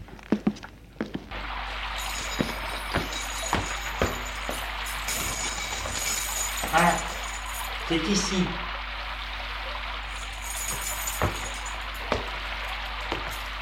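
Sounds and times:
steady hiss of room noise: 0.1s - 13.6s
keys on a keyring attached to a belt jingling: 1.8s - 7.9s, 10.1s - 13.6s
speech: 7.9s - 8.6s.

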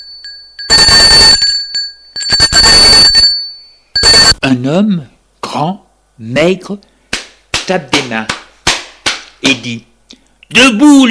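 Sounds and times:
loud harsh wake-up bell ringing: 0.0s - 4.4s
speech: 4.5s - 6.9s, 7.7s - 8.4s, 9.4s - 9.9s, 10.5s - 11.0s.

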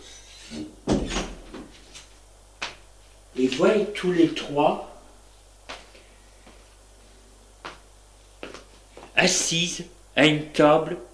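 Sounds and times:
door settling with a sharp knock-like thud: 0.8s - 1.7s
wooden door opening with a clunk and a brief scrape: 0.9s - 1.6s
speech: 3.4s - 4.9s, 9.2s - 11.1s.

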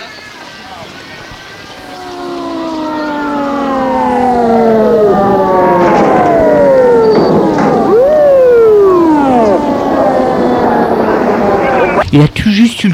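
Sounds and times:
ambulance siren wailing in a street: 1.7s - 12.0s.

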